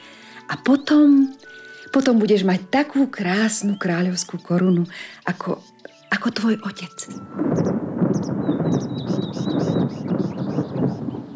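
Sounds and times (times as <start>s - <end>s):
bird chirps: 0.0s - 11.3s
speech: 0.5s - 8.4s
rolling thunder from an approaching thunderstorm: 7.2s - 11.3s.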